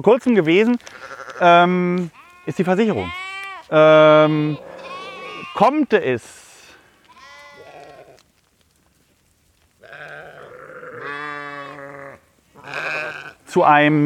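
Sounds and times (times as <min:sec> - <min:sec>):
speech: 0:00.0 - 0:04.7, 0:05.6 - 0:06.4, 0:13.5 - 0:14.0
herd of farm animals bleating: 0:00.8 - 0:06.0, 0:07.0 - 0:08.2, 0:09.8 - 0:13.8.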